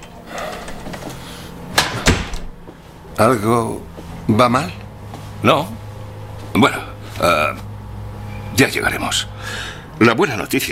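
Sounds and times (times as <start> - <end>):
door swinging shut with a heavier thud: 0.0 - 2.6
speech: 3.2 - 4.8, 5.4 - 5.8, 6.5 - 7.6, 8.6 - 10.7.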